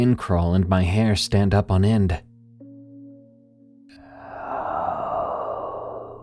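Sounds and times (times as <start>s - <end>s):
speech: 0.0s - 2.3s
raspy heavy breath with faint voiced groan: 4.0s - 6.2s.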